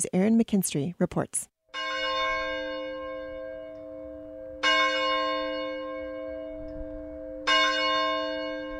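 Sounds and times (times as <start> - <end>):
speech: 0.0 - 1.5
large church bell tolling rung by a heavy rope: 1.7 - 8.7.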